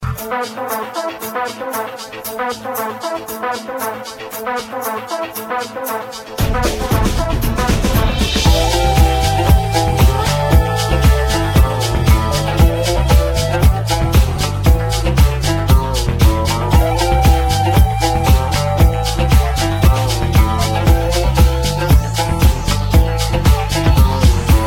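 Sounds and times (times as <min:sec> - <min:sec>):
bass and flute ringtone: 0:06.4 - 0:24.6.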